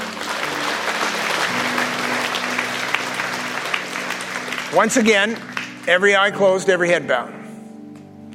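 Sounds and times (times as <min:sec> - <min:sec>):
sizable audience applauding at a religious service: 0:00.0 - 0:06.3
speech: 0:04.7 - 0:07.4.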